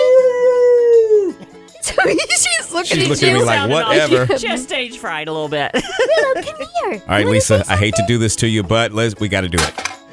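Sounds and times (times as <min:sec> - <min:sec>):
dog howling: 0:00.0 - 0:01.4
laughter: 0:01.8 - 0:04.8, 0:05.7 - 0:08.4
speech: 0:02.1 - 0:09.8.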